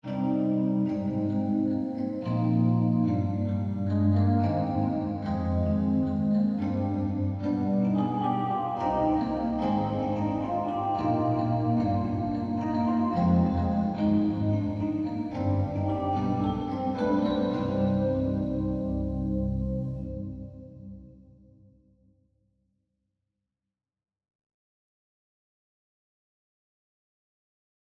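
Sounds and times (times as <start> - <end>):
vintage keyboard with wet effects: 0.0 - 21.5.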